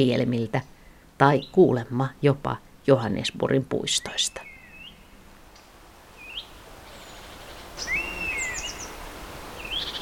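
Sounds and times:
speech: 0:00.0 - 0:04.5
steady background hiss: 0:00.0 - 0:10.0
European honey buzzard giving whistled calls: 0:06.2 - 0:08.9, 0:09.6 - 0:10.0.

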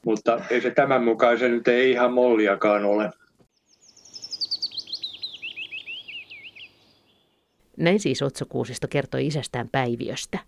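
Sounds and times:
speech: 0:00.0 - 0:03.2, 0:07.8 - 0:10.4
willow warbler singing: 0:03.5 - 0:07.6.

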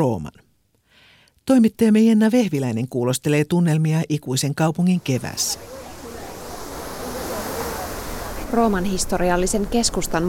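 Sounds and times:
speech: 0:00.0 - 0:00.4, 0:01.5 - 0:05.8, 0:08.5 - 0:10.2
Trevi Fountain water rushing and splashing in Rome's historic centre: 0:05.0 - 0:10.2.

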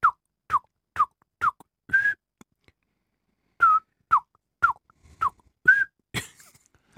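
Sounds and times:
person whistling an imitation of nightingale song: 0:00.0 - 0:02.3, 0:03.6 - 0:06.0.

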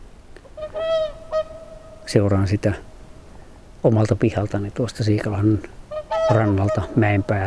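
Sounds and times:
swans calling on a shore in autumn as ice starts to form: 0:00.6 - 0:03.4, 0:05.8 - 0:07.4
speech: 0:02.1 - 0:02.9, 0:03.8 - 0:07.4.

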